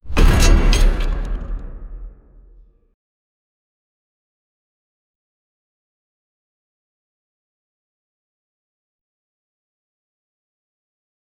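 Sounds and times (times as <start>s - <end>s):
giant mech robot footsteps: 0.0s - 2.7s.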